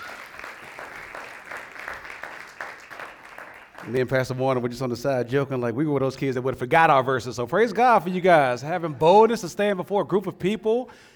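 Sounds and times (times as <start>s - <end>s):
audience applause for a Christmas performance at an evening church gathering: 0.0s - 4.1s
speech: 3.8s - 11.1s.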